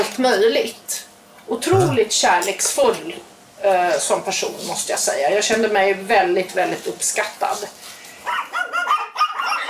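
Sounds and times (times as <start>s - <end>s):
speech: 0.0s - 8.4s
dogs yapping: 8.2s - 9.6s.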